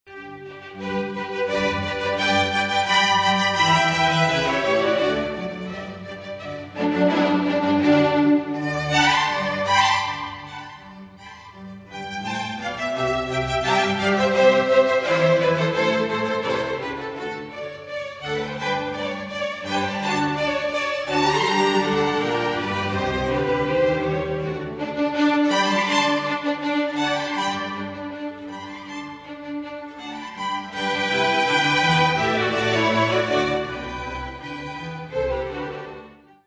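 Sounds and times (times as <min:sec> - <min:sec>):
sonata: 0:00.1 - 0:36.4.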